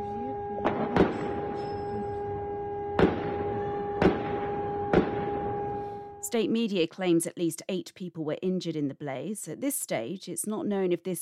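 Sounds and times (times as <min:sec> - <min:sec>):
droning hum: 0:00.0 - 0:06.5
gunshots during prison fire: 0:00.6 - 0:01.6, 0:03.0 - 0:05.9
speech: 0:06.3 - 0:11.2.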